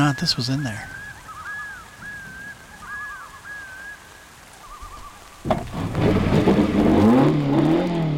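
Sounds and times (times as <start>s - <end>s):
faint chirping tones: 0.0s - 5.4s
speech: 0.1s - 1.0s
race car engine revving: 5.5s - 8.1s.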